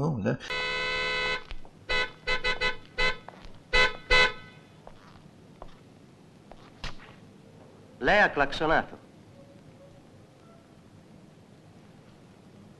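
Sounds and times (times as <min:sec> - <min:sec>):
speech: 0:00.0 - 0:00.7, 0:08.0 - 0:09.0
quiet street background: 0:00.0 - 0:12.7
car horn honking: 0:00.4 - 0:04.7.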